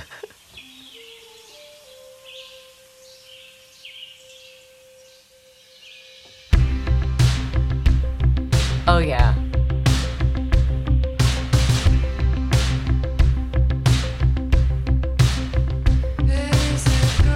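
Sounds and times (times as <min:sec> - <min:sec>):
bird chirps and tweets: 0:00.2 - 0:06.6
loud music with heavy drums: 0:06.6 - 0:17.3.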